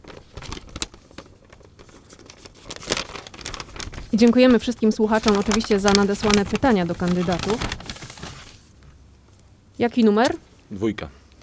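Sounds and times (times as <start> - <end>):
paper envelope drawn and torn open: 0.0 - 8.6
speech: 4.2 - 7.8, 9.8 - 11.2.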